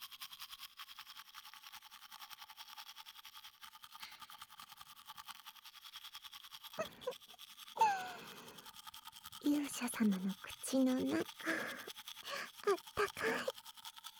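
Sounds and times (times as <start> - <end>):
toothbrush scrubbing teeth: 0.0 - 14.1
breathy noises: 6.8 - 8.7, 9.4 - 13.5
speech: 9.5 - 11.8.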